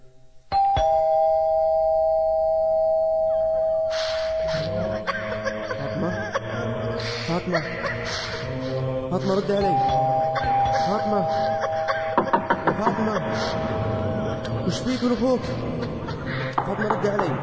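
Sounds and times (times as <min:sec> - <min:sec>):
electronic doorbell chime ringing at an apartment door: 0:00.5 - 0:04.7, 0:09.6 - 0:12.7
laughter: 0:04.0 - 0:17.4
speech: 0:09.1 - 0:10.2, 0:10.8 - 0:11.6, 0:12.8 - 0:15.9, 0:16.7 - 0:17.4.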